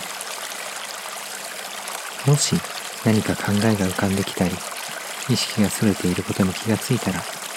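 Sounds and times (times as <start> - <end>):
river stream flowing with soft bubbling: 0.0 - 7.5
speech: 2.2 - 4.7, 5.3 - 7.4.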